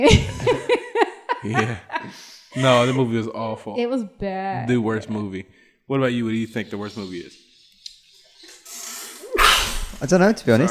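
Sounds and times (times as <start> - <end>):
speech: 0.0 - 0.4, 1.4 - 7.4, 10.0 - 10.6
laughter: 0.0 - 3.4
stifled sneeze: 9.2 - 10.0.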